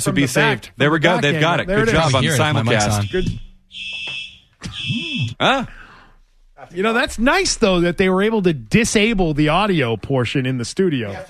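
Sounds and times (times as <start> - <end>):
speech: 0.0 - 4.0, 4.8 - 5.8, 6.6 - 11.2
fire alarm blaring: 2.5 - 5.4.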